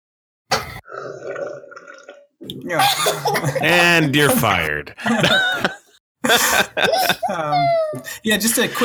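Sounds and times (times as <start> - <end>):
loud slurp of water from a cup: 0.8 - 2.7
speech: 2.5 - 8.8
laughter: 2.8 - 7.7.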